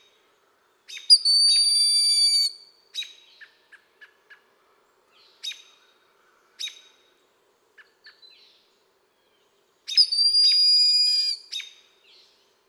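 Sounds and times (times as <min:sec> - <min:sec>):
Blue jay calling: 0:00.9 - 0:03.1, 0:09.9 - 0:11.7.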